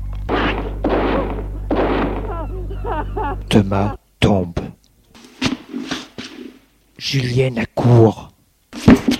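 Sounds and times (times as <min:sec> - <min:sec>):
rifle shots in a courtyard: 0:00.3 - 0:02.3
laughter: 0:01.0 - 0:04.0
speech: 0:03.0 - 0:04.8, 0:07.0 - 0:09.0.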